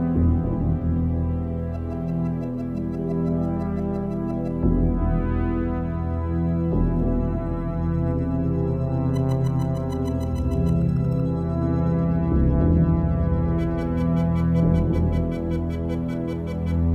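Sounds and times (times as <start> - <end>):
sustained synthesizer drone with layered low tones for a film title sequence: 0.0 - 16.9
rapid high-pitched ticking patterns: 1.4 - 4.9, 8.6 - 12.1, 13.1 - 16.9.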